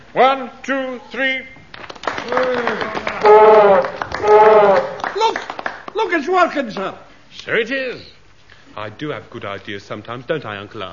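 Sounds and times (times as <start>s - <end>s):
speech: 0.1s - 1.6s, 2.2s - 8.1s, 8.8s - 10.9s
group of men clapping: 1.7s - 7.0s
loud sustained men's voices cheering together: 2.2s - 5.6s.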